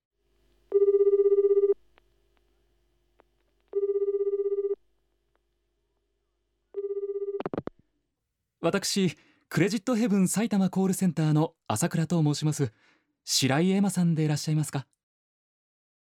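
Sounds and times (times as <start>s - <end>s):
phone line ringback tone during outgoing call: 0.7s - 1.8s, 3.8s - 4.8s, 6.8s - 7.5s
speech: 8.6s - 15.0s.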